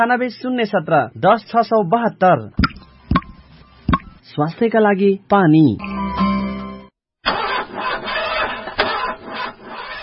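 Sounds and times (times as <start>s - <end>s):
speech: 0.0s - 2.7s, 4.3s - 6.3s
car engine cranking and failing to start with a weak battery: 7.2s - 10.0s.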